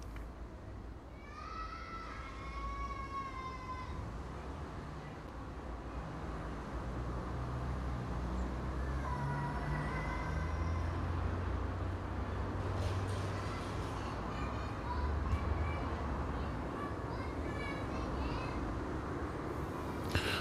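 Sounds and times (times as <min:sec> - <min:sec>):
low street traffic rumble: 0:00.0 - 0:20.3
playing child's high happy excited scream between houses: 0:01.2 - 0:04.0.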